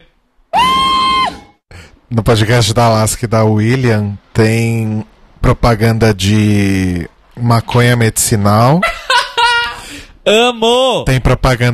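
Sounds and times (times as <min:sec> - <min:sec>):
person screaming: 0:00.5 - 0:01.5
speech: 0:02.1 - 0:09.0, 0:10.3 - 0:11.7.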